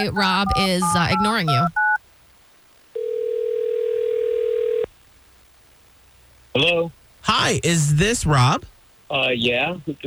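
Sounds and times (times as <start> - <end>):
speech: 0.0 - 1.8, 6.6 - 10.0
telephone dialing and ringing tone: 0.0 - 2.0, 3.0 - 4.9.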